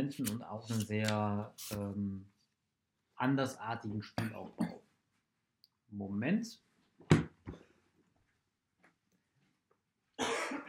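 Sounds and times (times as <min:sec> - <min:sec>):
speech: 0:00.1 - 0:02.4, 0:03.2 - 0:04.8, 0:05.9 - 0:07.6
coughing: 0:10.2 - 0:10.6
throat clearing: 0:10.2 - 0:10.6.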